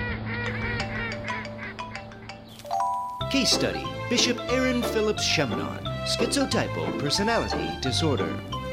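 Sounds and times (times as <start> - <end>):
flock of ducks quacking and honking: 0.0 - 2.5
speech: 3.3 - 8.6.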